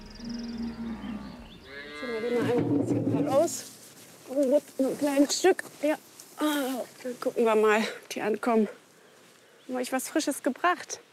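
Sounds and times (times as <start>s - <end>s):
cows due to calve mooing in a barn: 0.0s - 2.6s
speech: 2.6s - 8.8s, 9.7s - 11.1s.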